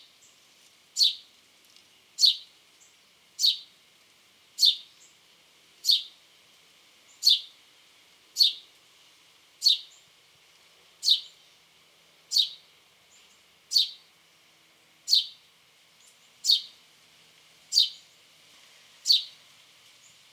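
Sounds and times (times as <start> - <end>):
house sparrow Passer domesticus sharp downward chirps: 1.0 - 1.2, 2.2 - 2.4, 3.4 - 3.6, 4.6 - 5.1, 5.8 - 6.1, 7.1 - 7.5, 9.6 - 10.0, 11.0 - 11.4, 12.3 - 12.6, 13.7 - 14.0, 15.1 - 15.4, 16.4 - 16.7, 17.7 - 18.0, 19.1 - 19.3.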